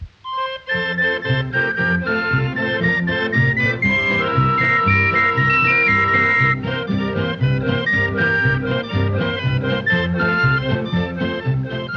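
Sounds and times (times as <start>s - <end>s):
cranked barrel organ street instrument playing a bright busy tune: 0.3s - 11.9s.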